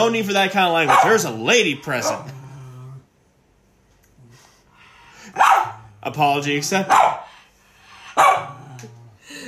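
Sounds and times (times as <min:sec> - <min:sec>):
speech: 0:00.0 - 0:02.4, 0:05.3 - 0:07.2
dog barking loudly: 0:00.8 - 0:01.4, 0:05.3 - 0:05.8, 0:06.8 - 0:07.3, 0:08.2 - 0:08.6.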